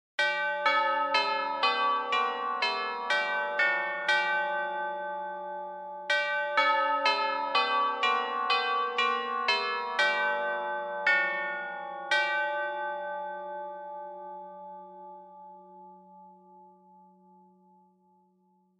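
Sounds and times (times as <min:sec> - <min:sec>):
bells ringing: 0:00.2 - 0:15.2.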